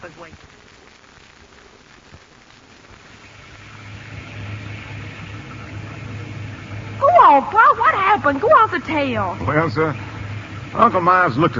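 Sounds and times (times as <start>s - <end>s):
speech: 0.0s - 0.6s, 7.4s - 10.1s, 10.8s - 11.5s
steady hissing rain in a storm: 0.0s - 11.5s
low rumbling drone: 2.9s - 11.5s.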